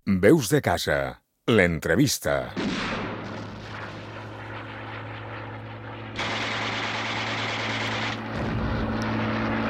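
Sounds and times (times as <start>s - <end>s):
speech: 0.1s - 2.9s
bombs exploding in the Civil War bombing of Benicarló Spain: 2.6s - 5.5s, 8.3s - 8.9s
warplanes droning overhead in the Civil War bombing of Benicarló Spain: 2.6s - 9.6s.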